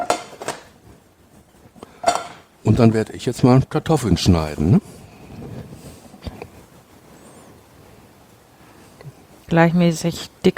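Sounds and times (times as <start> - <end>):
preheating frying pan clattering on stovetop: 0.0 - 0.8, 2.0 - 2.5
speech: 2.6 - 5.0, 9.5 - 10.5.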